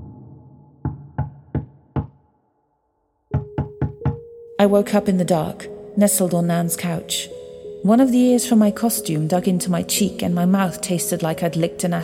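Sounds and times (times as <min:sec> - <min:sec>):
sharp knocks: 0:00.9 - 0:02.2, 0:03.3 - 0:04.3
heavy rhythmic thumping on a door: 0:03.3 - 0:04.3
speech: 0:04.6 - 0:12.0.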